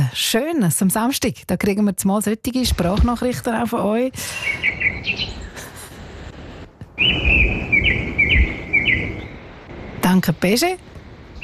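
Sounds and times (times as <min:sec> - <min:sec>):
speech: 0:00.1 - 0:05.4, 0:07.0 - 0:08.4, 0:10.1 - 0:11.4
birds singing outdoors: 0:04.2 - 0:11.4.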